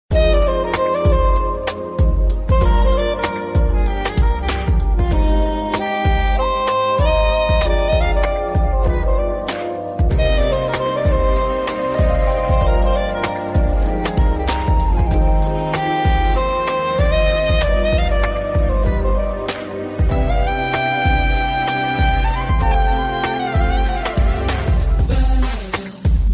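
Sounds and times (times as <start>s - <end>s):
romantic Hindi instrumental song: 0.1s - 26.3s.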